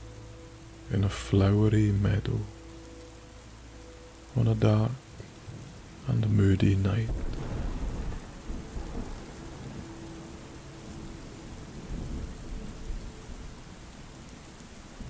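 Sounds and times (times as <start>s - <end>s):
heavy rain pouring on a summer night over a flowery meadow: 0.0s - 15.0s
speech: 0.9s - 2.6s, 4.4s - 5.0s, 6.1s - 7.3s
deep low rumble of thunder: 6.9s - 14.2s.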